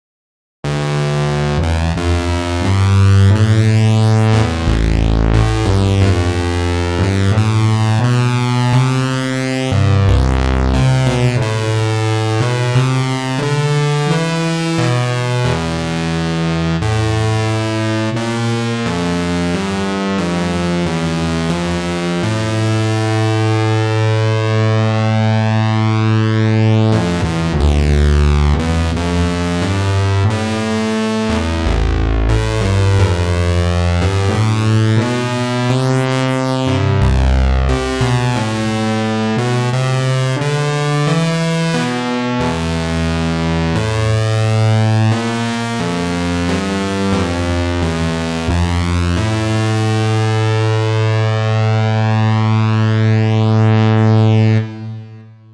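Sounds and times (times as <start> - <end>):
recorded lead: 0.6 - 54.9.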